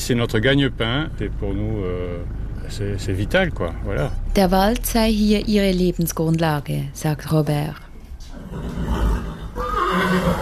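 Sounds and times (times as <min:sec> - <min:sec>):
speech: 0:00.0 - 0:07.8
steady low rumbling noise: 0:00.0 - 0:10.3
horse whinnying among breeding horses in a stable: 0:08.3 - 0:10.3.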